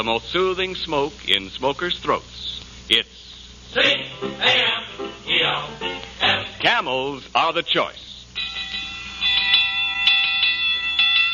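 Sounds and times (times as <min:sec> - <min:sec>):
speech: 0:00.0 - 0:08.1
alarm bell ringing: 0:08.4 - 0:11.3.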